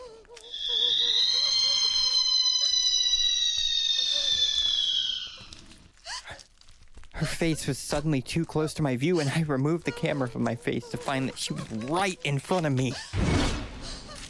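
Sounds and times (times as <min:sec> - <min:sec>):
ghostly woman's shrill piercing screech: 0:00.3 - 0:06.4
speech: 0:07.4 - 0:13.4.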